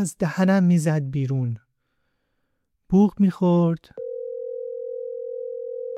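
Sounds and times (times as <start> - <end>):
speech: 0.0 - 1.6, 2.9 - 4.0
telephone ringback tone: 4.0 - 5.9.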